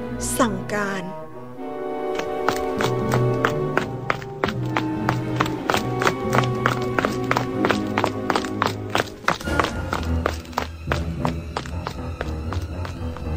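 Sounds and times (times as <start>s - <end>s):
sustained musical background: 0.0s - 13.3s
speech: 0.2s - 1.2s
running footsteps of a bandit leader and henchmen: 2.0s - 13.3s.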